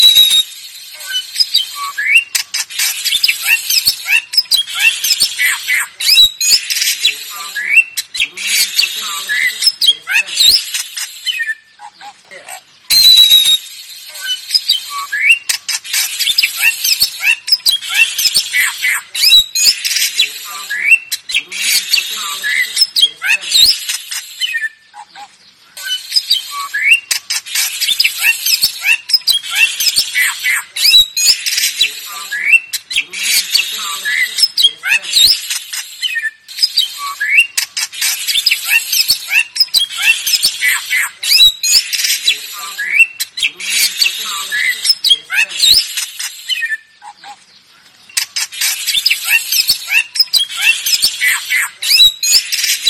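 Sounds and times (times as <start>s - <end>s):
Bali starling singing: 0.0s - 52.8s.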